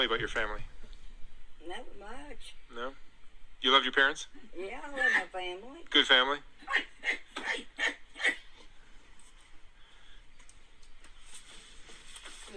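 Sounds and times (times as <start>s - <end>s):
speech: 0.0s - 0.8s, 1.6s - 8.4s
man imitating dog barks: 6.6s - 8.4s
quiet shuffling: 8.7s - 12.5s.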